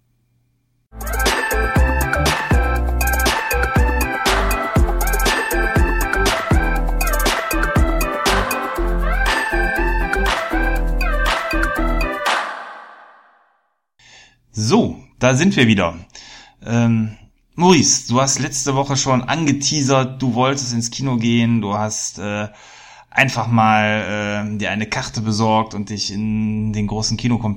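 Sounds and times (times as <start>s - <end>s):
podcast musical jingle with punchy beats and bright layered tones: 0.9s - 13.3s
speech: 14.7s - 27.5s.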